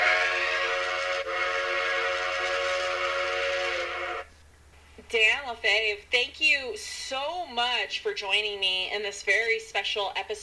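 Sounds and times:
steam train whistle: 0.0 - 4.3
speech: 5.1 - 10.4.

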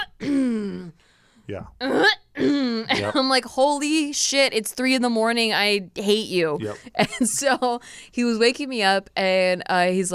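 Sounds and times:
voice imitating a man clearing his throat: 0.0 - 3.2
speech: 1.5 - 10.1.

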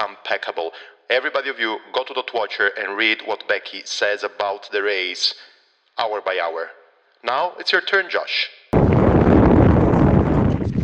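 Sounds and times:
speech: 0.3 - 8.6
wind buffeting a microphone during a bikepacking race in the Scottish Highlands: 8.8 - 10.8.

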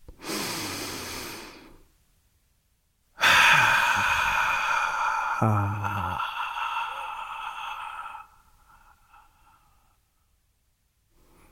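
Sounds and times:
long deep breath: 0.1 - 1.9, 3.2 - 10.4
speech: 5.4 - 6.0.

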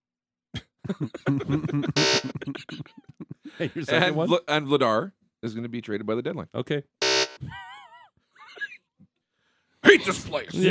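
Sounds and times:
laughter: 0.6 - 4.4, 7.4 - 8.8
speech: 0.9 - 3.0, 3.6 - 7.6, 9.8 - 10.6
harsh nasal game show buzzer: 1.9 - 2.4, 7.0 - 7.4.

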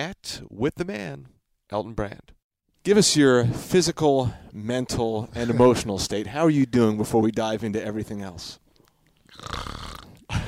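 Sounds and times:
speech: 0.0 - 8.6, 9.4 - 9.8
person imitating snoring: 9.3 - 10.3.

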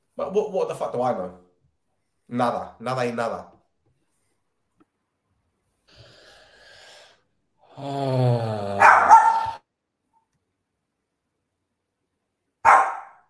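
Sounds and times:
speech: 0.2 - 1.4, 2.3 - 3.5, 7.8 - 9.0
dog growling and barking: 8.6 - 9.6.

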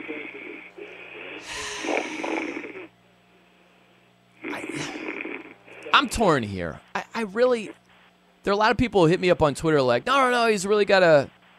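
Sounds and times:
caller snoring over a phone line: 0.0 - 2.9, 4.4 - 6.1
low hum: 0.0 - 11.5
speech: 6.0 - 7.8, 8.4 - 11.4.

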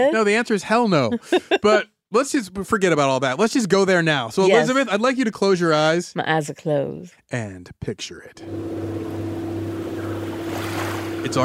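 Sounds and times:
speech: 0.0 - 9.3, 11.2 - 11.4
laughter: 1.1 - 1.8
motorboat engine droning at sea: 8.4 - 11.4
water rushing and slapping against the prow: 10.1 - 11.4.

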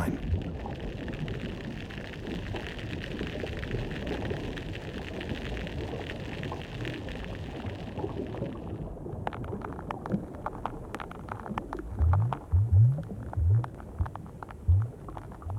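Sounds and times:
short low grunting pulses underwater: 0.0 - 0.2
underwater clicks and snaps of fish and crustaceans through a hydrophone: 1.0 - 15.5.

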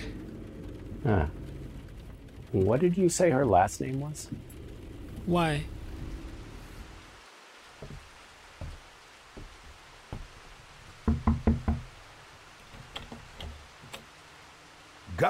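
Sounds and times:
rain falling outside: 0.0 - 15.2
speech: 1.0 - 1.4, 2.5 - 4.5, 5.2 - 5.8
light taps: 7.8 - 11.9
firm raps on a door: 7.8 - 12.0.

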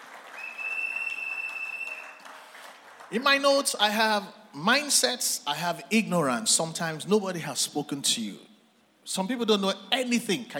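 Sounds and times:
audience applauding: 0.0 - 3.4
sustained high whistle-like tone: 0.4 - 2.2
speech: 3.1 - 10.5.

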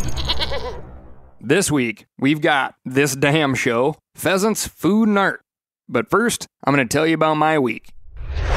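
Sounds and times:
bighorn sheep bleating: 0.2 - 0.8
speech: 1.4 - 8.5.

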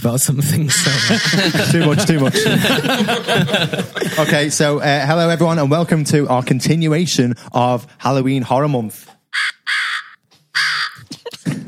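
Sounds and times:
speech: 0.0 - 9.2
laughter: 0.7 - 4.7
crow cawing harshly: 9.3 - 11.1.

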